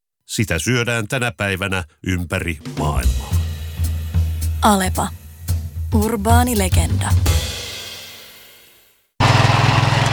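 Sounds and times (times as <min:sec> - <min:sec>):
speech: 0:00.3 - 0:03.3, 0:04.6 - 0:05.2, 0:05.9 - 0:07.5
lawn mower engine sputtering and stalling: 0:09.2 - 0:10.1.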